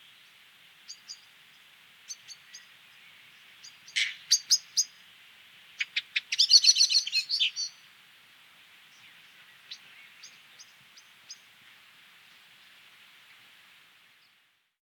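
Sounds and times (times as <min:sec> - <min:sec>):
common blackbird Turdus merula calling with ticks and chinks: 0:03.6 - 0:05.0, 0:05.8 - 0:07.8.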